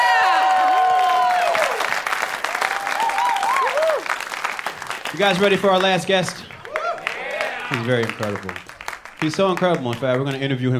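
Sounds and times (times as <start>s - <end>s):
live crowd whooping and shouting cheers: 0.0s - 4.4s, 6.5s - 8.3s
live crowd applauding: 0.0s - 10.7s
speech: 5.2s - 6.5s, 7.7s - 10.7s.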